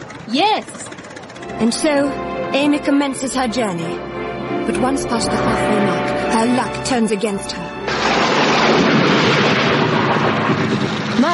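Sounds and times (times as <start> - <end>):
speech: 0.3 - 7.7, 11.2 - 11.3
storm wind and headwinds of a tropical storm over the South China Sea: 7.9 - 11.3.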